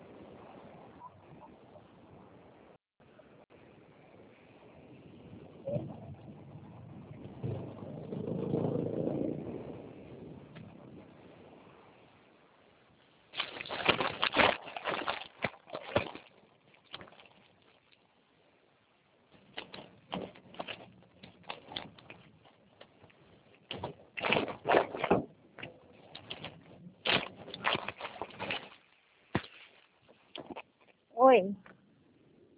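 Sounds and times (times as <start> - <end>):
outdoor street ambience: 0.0 - 32.5
vehicle rumbling past: 5.4 - 12.0
bumps and rustles of a person getting into a car: 13.3 - 18.1, 19.2 - 31.1
speech: 31.3 - 31.6.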